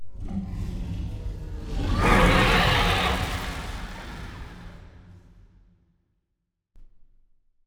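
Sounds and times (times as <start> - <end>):
aquatic dragon death cry: 1.8 - 4.8.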